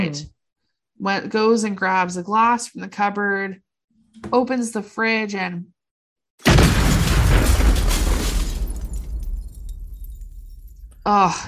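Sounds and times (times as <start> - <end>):
speech: 0.1 - 0.3, 1.0 - 3.6, 4.2 - 5.7, 11.1 - 11.4
explosion in a TV drama episode: 6.4 - 11.1
shattering, crackling debris: 6.4 - 11.4.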